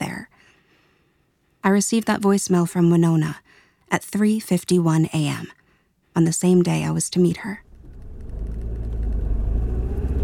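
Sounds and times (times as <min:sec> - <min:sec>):
speech: 0:01.7 - 0:05.6, 0:06.2 - 0:07.6
car engine rumbling while driving up to a park: 0:07.6 - 0:10.2.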